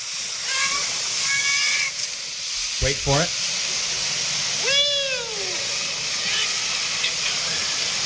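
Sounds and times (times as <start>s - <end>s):
meow-like call: 0.4s - 2.0s, 4.6s - 7.9s
speech: 2.8s - 3.5s.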